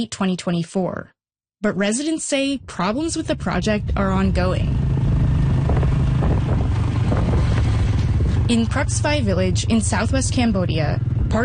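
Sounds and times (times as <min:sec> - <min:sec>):
speech: 0:00.0 - 0:04.9, 0:08.5 - 0:11.4
motorbike engine drone while riding: 0:02.5 - 0:11.4
rushing wind noise while riding a motorbike: 0:02.7 - 0:11.4.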